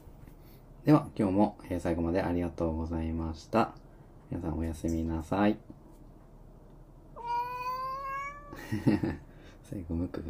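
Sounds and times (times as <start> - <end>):
speech: 0.8 - 5.8, 8.7 - 10.2
cat meowing during a fight: 7.2 - 8.7
laughter: 8.6 - 9.2.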